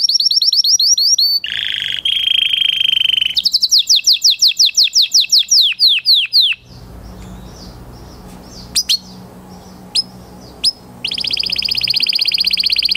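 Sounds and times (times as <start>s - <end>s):
canary song: 0.0s - 12.9s.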